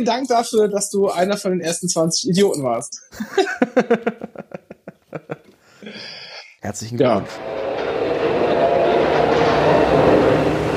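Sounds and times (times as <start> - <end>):
speech: 0.0 - 4.6, 5.9 - 7.6
laughter: 3.1 - 5.5
train rumbling at a station platform: 7.2 - 10.7.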